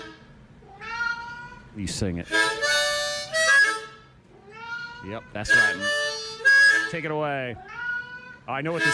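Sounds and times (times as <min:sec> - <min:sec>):
cat meowing: 0:00.6 - 0:01.7, 0:04.3 - 0:05.4, 0:07.6 - 0:08.5
speech: 0:01.8 - 0:02.7, 0:05.0 - 0:06.2, 0:06.9 - 0:07.8, 0:08.5 - 0:08.9.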